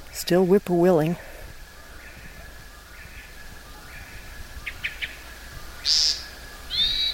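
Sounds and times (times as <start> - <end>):
speech: 0.2 - 1.3
hermit thrush call notes: 1.7 - 7.1.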